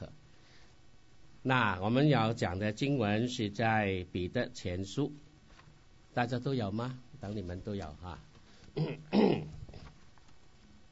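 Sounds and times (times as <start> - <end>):
speech: 1.4 - 5.2, 6.2 - 9.6
person coughing and clearing a sensitive throat: 8.8 - 9.6.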